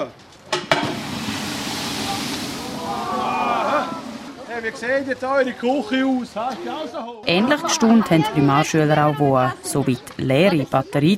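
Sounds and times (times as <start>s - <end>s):
water thrown on burning deep fryer splashing: 0.7s - 6.3s
speech: 4.6s - 11.1s.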